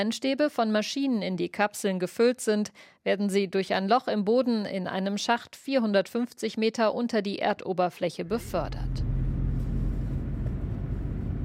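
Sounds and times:
speech: 0.0s - 9.1s
car engine droning while driving down into an underground tunnel: 8.3s - 11.4s.

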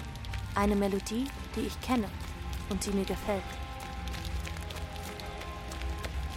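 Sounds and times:
heavy rain: 0.0s - 6.3s
speech: 0.6s - 3.6s.

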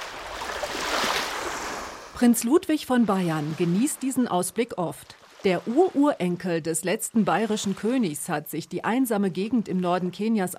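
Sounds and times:
lake water washing against the shore: 0.0s - 6.2s
speech: 2.2s - 10.5s.

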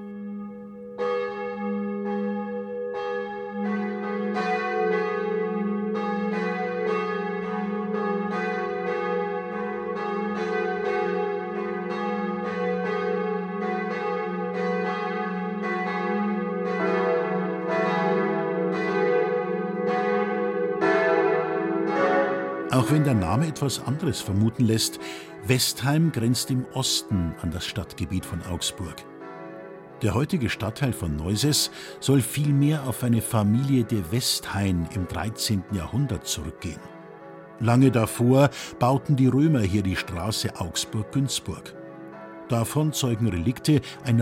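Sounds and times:
church bells ringing a midday chime: 0.0s - 44.1s
speech: 22.8s - 29.1s, 30.0s - 36.9s, 37.6s - 41.8s, 42.5s - 44.1s.

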